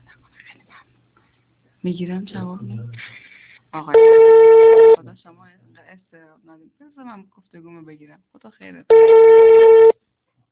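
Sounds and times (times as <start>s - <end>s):
speech: 1.8s - 3.1s, 3.7s - 9.9s
telephone tone from an unanswered phone call: 4.0s - 5.0s, 8.9s - 9.9s.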